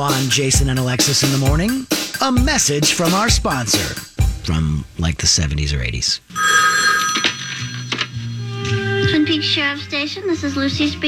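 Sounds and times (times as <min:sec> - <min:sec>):
speech: 0:00.0 - 0:07.2, 0:09.1 - 0:11.0
telephone bell ringing: 0:06.3 - 0:08.4.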